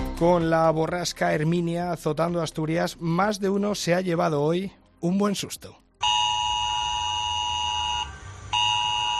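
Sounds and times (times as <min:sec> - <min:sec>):
speech: 0:00.2 - 0:05.8
mobile phone emergency alert tone: 0:06.0 - 0:09.1.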